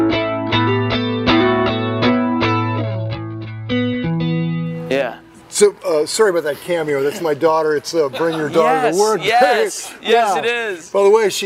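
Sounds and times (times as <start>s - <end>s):
electric guitar played clean on the neck pickup, plucked chords and notes: 0.0s - 5.5s
speech: 5.6s - 11.4s.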